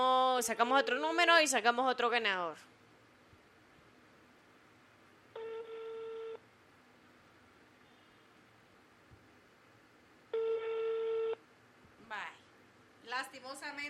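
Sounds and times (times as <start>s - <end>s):
speech: 0.0s - 2.7s
telephone ringback tone as a call is placed: 5.4s - 6.4s, 10.4s - 11.4s.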